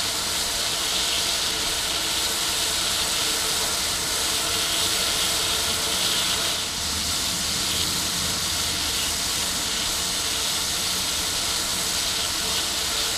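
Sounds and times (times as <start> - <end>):
small steam: 0.0 - 13.1.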